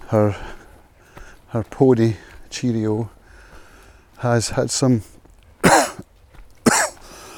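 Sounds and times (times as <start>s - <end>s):
speech: 0.1s - 0.6s, 1.5s - 3.2s, 4.2s - 5.2s
person coughing and clearing throat: 5.6s - 6.0s, 6.6s - 7.0s.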